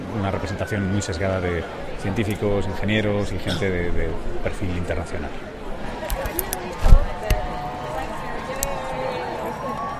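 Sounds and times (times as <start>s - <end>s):
murmur of voices of a busy outdoor crowd: 0.0s - 9.9s
speech: 0.2s - 5.6s
umbrellas snapping open in the rain: 6.1s - 7.4s.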